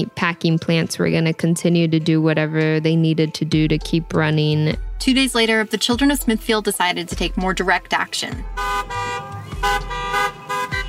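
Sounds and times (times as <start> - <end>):
speech: 0.0 - 9.9
car horns honking at a drive-by car protest: 8.4 - 10.8.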